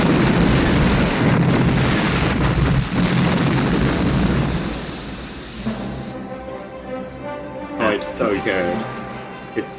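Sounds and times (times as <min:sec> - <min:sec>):
crackling debris from hangar explosion: 0:00.0 - 0:06.1
hangar blowing up at a base: 0:00.0 - 0:06.2
speech: 0:08.4 - 0:09.0, 0:09.6 - 0:09.7.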